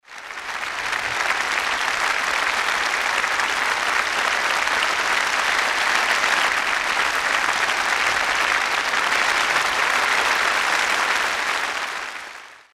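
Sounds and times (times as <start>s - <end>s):
theatre audience applause: 0.0s - 12.7s.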